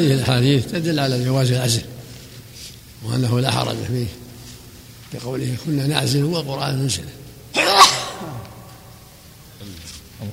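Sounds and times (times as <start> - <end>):
speech: 0.0 - 2.0, 3.0 - 4.2, 5.1 - 7.6, 9.6 - 10.3
sneeze: 7.6 - 8.9.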